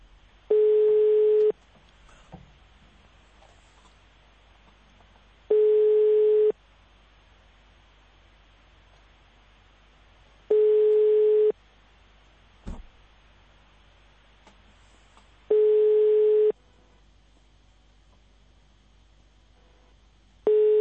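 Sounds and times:
faint low noise: 0.0s - 20.7s
telephone ringback tone of a call ringing before voicemail: 0.5s - 1.5s, 5.5s - 6.5s, 10.5s - 11.5s, 15.5s - 16.6s, 20.5s - 20.7s.

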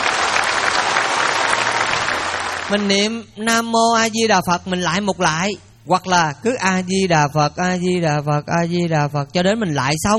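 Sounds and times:
audience applause at a Buddhist dharma talk: 0.0s - 2.9s
speech: 2.7s - 10.1s.

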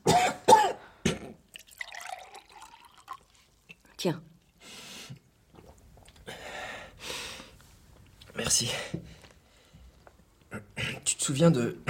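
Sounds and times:
harsh coughing from choking on a rabbit bone: 0.0s - 1.4s
liquid trickling and splashing: 1.5s - 4.6s
speech: 4.0s - 4.3s, 8.4s - 9.1s, 11.3s - 11.8s.

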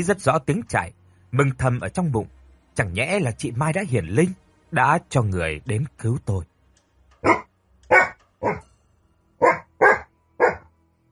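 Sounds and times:
speech: 0.0s - 6.5s, 7.2s - 8.6s
dog barking loudly and sharply: 7.2s - 8.6s, 9.4s - 10.7s.

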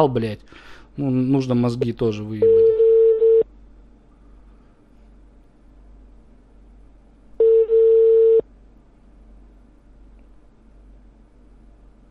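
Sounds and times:
speech: 0.0s - 2.7s
low hiss and hum: 0.0s - 12.0s
telephone busy signal for an engaged number: 2.4s - 3.4s, 7.4s - 8.4s.

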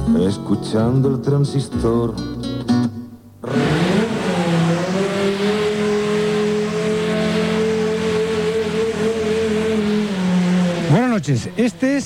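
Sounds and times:
speech: 0.1s - 3.0s, 11.2s - 12.0s
Formula 1 car engine roaring at the Montmeló racing circuit: 3.4s - 12.0s.

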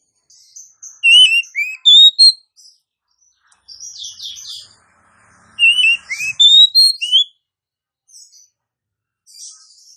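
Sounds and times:
female Oriental magpie-robin call with buzzy notes and sliding whistles: 1.0s - 2.4s, 5.5s - 7.3s.

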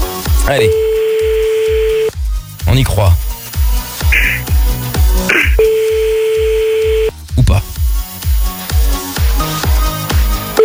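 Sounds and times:
rhythmic music: 0.0s - 10.6s
speech: 0.5s - 0.8s, 2.6s - 3.2s, 5.2s - 5.8s
sustained steady telephone tone: 0.5s - 2.1s, 5.3s - 7.1s
telephone dialing beeps as a call is placed: 0.6s - 2.1s, 5.6s - 7.1s.

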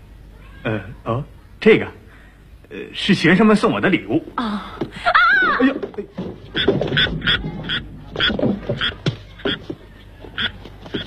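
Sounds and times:
speech: 0.6s - 2.0s, 2.7s - 7.5s
laughter: 4.9s - 6.2s
frogs croaking during a Beijing stage performance: 6.6s - 9.7s, 10.3s - 11.0s.

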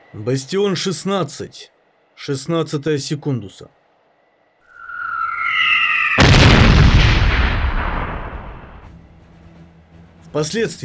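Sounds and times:
speech: 0.1s - 3.8s, 10.3s - 10.8s
sirens blaring from a fortress wall: 4.8s - 8.7s
heavy explosion from a fortress wall: 4.8s - 8.9s.

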